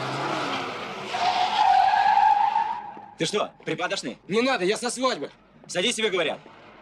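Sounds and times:
car skidding with high tire screech: 0.0s - 3.6s
speech: 3.2s - 6.5s.

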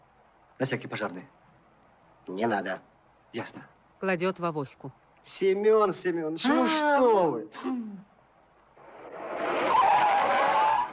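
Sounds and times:
speech: 0.6s - 1.4s, 2.3s - 8.1s
car braking hard and skidding, tires screeching: 8.8s - 10.9s.

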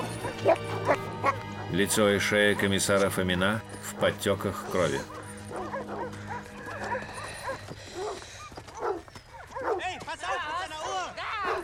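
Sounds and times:
dog set on a prisoner of war barking and yelping on a bridge: 0.0s - 1.7s, 5.0s - 9.8s, 10.8s - 11.6s
speech: 0.4s - 1.0s, 1.7s - 5.2s.

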